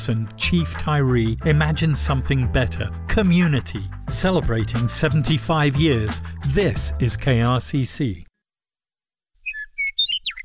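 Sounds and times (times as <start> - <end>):
speech: 0.0 - 8.3
Western Meadowlark singing flute-like whistled notes: 9.4 - 10.4.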